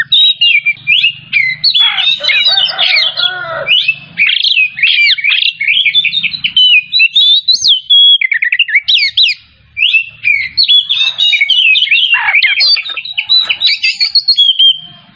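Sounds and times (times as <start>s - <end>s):
Oriental magpie-robin singing vigorously: 0.0s - 15.1s.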